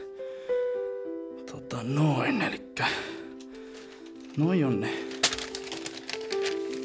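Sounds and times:
speech: 0:01.5 - 0:03.2, 0:04.4 - 0:05.1
papers being stacked into a pile, rustling and shuffling: 0:03.5 - 0:06.8.

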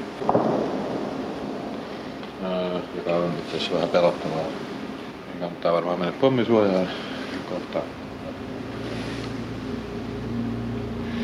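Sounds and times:
gunshot boom of gunfire in a war zone echoing: 0:00.0 - 0:02.4
steady noise: 0:00.0 - 0:11.2
speech: 0:02.8 - 0:04.8, 0:05.4 - 0:08.0.

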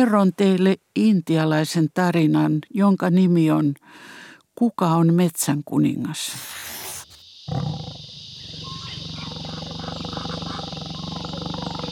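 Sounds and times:
speech: 0:00.0 - 0:06.7, 0:07.5 - 0:08.0
brief burst of hiss: 0:06.3 - 0:11.9
tiger's deep rumbling roar: 0:07.5 - 0:11.9.

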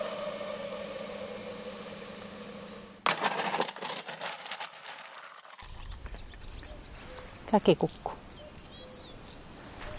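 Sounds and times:
steady outdoor hiss: 0:00.0 - 0:09.9
small birds chirping by a lake: 0:05.6 - 0:09.9
speech: 0:07.5 - 0:08.1.

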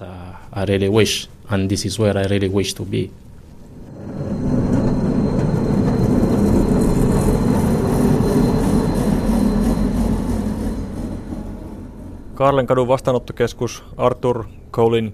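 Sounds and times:
speech: 0:00.0 - 0:03.2, 0:12.4 - 0:15.1
faint whine from a tram: 0:00.0 - 0:15.1
tram rumbling at an outdoor stop in freezing weather: 0:03.3 - 0:14.0.

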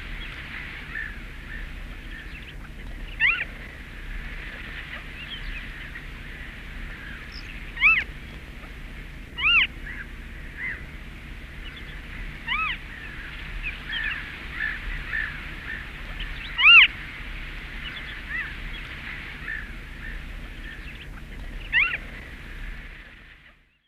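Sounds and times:
birds twittering: 0:00.0 - 0:23.8
Western Marsh Harrier mewing calls: 0:00.9 - 0:03.6, 0:06.9 - 0:08.1, 0:09.4 - 0:10.9, 0:12.4 - 0:16.9, 0:19.4 - 0:22.1.

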